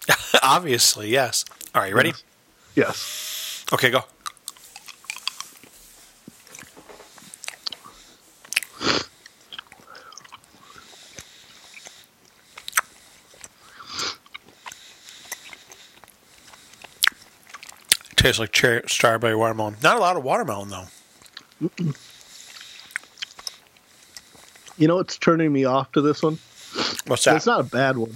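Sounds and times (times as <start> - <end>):
laughter: 0.0 - 0.7
speech: 0.5 - 4.2, 18.3 - 21.0, 21.6 - 22.1, 24.8 - 26.5, 27.1 - 28.1
chewing chewy fruit candy: 4.2 - 5.8, 6.4 - 18.4, 20.9 - 24.8.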